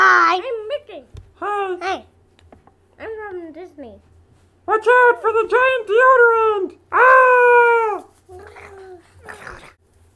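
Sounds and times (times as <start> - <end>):
speech: 4.8 - 8.0
person imitating a dog with whiny whimpering yelps: 6.9 - 9.8.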